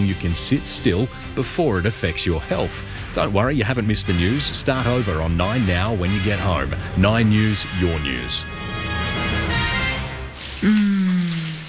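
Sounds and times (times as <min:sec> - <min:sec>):
speech: 0:00.0 - 0:08.7, 0:10.6 - 0:10.8
shower water running: 0:09.5 - 0:11.6.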